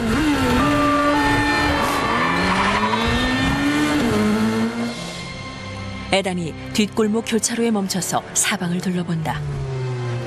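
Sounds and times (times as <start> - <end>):
car tires skidding: 0.0 - 5.1
car engine roaring and revving while swerving: 0.0 - 5.4, 9.1 - 10.2
traffic rushing: 0.0 - 6.0, 8.8 - 10.2
speech: 6.2 - 9.7.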